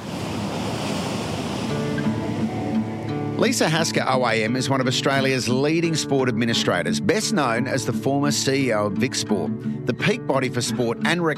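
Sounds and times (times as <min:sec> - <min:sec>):
ocean surf breaking against the shore: 0:00.0 - 0:05.2
speech: 0:03.4 - 0:11.3.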